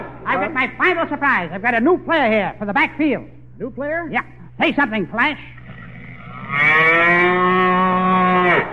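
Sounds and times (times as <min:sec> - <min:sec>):
speech: 0:00.5 - 0:05.5
cow mooing: 0:05.7 - 0:08.7.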